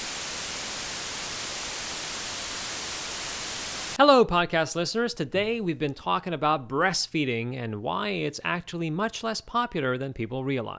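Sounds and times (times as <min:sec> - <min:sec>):
steady white noise static hiss: 0:00.0 - 0:04.0
speech: 0:04.0 - 0:10.7.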